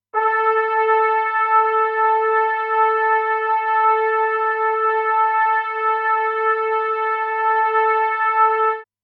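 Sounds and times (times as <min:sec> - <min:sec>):
soft trumpet: 0:00.0 - 0:08.9.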